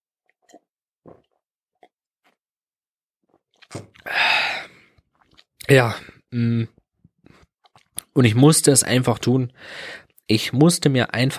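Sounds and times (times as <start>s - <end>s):
person sipping and swallowing a beverage: 0.2s - 2.4s, 3.2s - 8.2s
breathy burst: 4.0s - 4.9s
speech: 5.7s - 6.8s, 8.2s - 11.3s.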